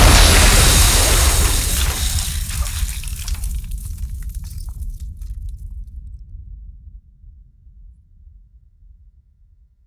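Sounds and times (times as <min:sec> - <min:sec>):
explosion hitting glass: 0:00.0 - 0:05.2.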